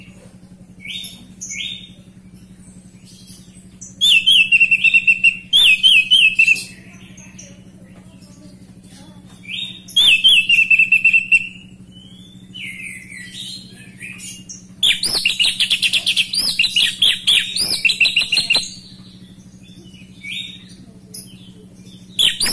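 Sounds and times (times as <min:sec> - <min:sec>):
orange-headed thrush singing rich whistles and rattling chatter: 0:00.0 - 0:22.5
steady low hum: 0:00.0 - 0:22.5.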